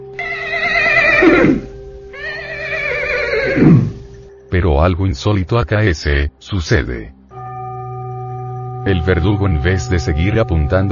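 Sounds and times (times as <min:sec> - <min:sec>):
horse neighing: 0:00.2 - 0:04.1
speech: 0:04.6 - 0:07.2, 0:08.8 - 0:10.9.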